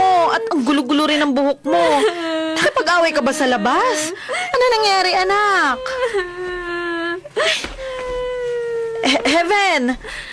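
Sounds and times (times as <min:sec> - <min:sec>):
speech: 0:00.5 - 0:06.4, 0:09.0 - 0:10.3
child sobbing: 0:01.7 - 0:04.8, 0:05.5 - 0:09.2.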